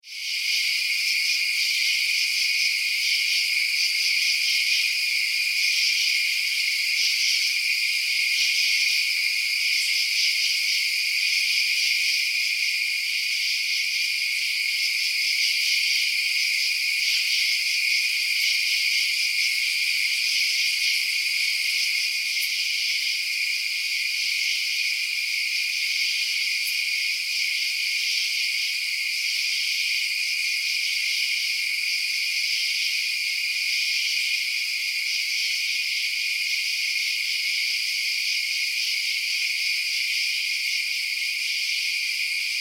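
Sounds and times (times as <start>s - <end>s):
insects at night: 0.0s - 42.6s.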